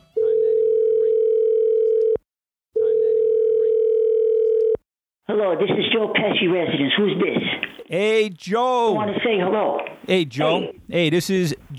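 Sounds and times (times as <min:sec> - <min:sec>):
telephone ringing tone while placing a call: 0:00.1 - 0:02.2, 0:02.8 - 0:04.8
speech: 0:05.3 - 0:11.7.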